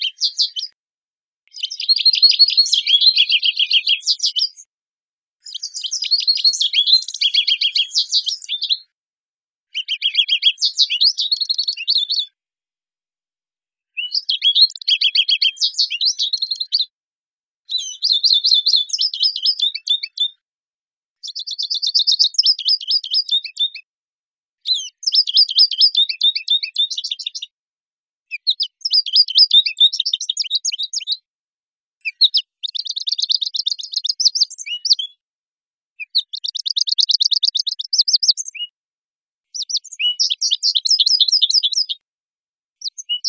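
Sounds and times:
American goldfinch Spinus tristis singing: 0.0 - 0.7, 1.5 - 4.7, 5.4 - 8.8, 9.7 - 12.3, 14.0 - 16.9, 17.7 - 20.4, 21.2 - 23.8, 24.6 - 27.5, 28.4 - 31.2, 32.0 - 35.2, 36.0 - 38.8, 39.5 - 42.0, 42.8 - 43.2.

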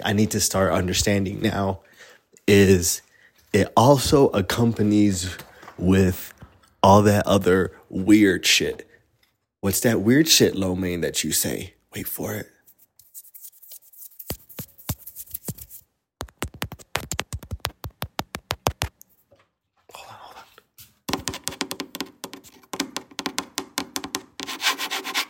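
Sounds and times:
speech: 0.0 - 8.9, 9.6 - 12.6
ASMR rubbing and scratching strokes: 12.6 - 19.0, 24.4 - 25.2.

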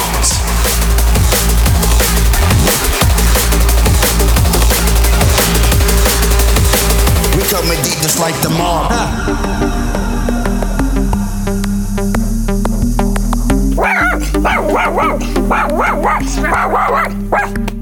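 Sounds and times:
steady loud music or low hum: 0.0 - 17.8
speech: 7.8 - 10.0, 15.2 - 17.8
dog barking excitedly in studio: 13.7 - 17.7.

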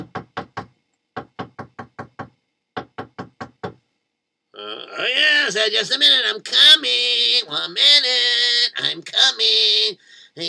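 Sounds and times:
knocking on a door: 0.0 - 3.8
speech: 4.6 - 10.4.

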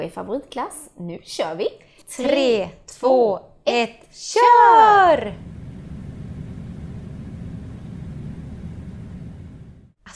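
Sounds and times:
speech: 0.0 - 5.6
air conditioning unit hissing and humming: 4.7 - 9.9.

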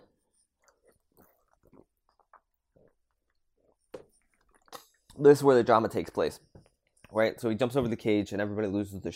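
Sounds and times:
person drinking water: 0.0 - 5.2
gulping swallows of water: 0.5 - 5.2
speech: 5.2 - 6.5, 7.1 - 9.1.

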